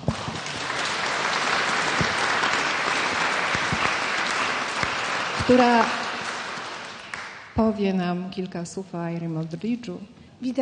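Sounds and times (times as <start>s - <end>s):
audience applause of many hands clapping: 0.0s - 7.6s
speech: 5.5s - 6.0s, 7.6s - 10.6s.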